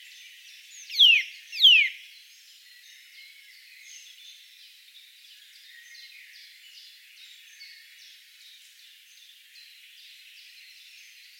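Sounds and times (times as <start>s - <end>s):
Eurasian nuthatch Sitta europaea whistled calls: 0.9s - 2.0s.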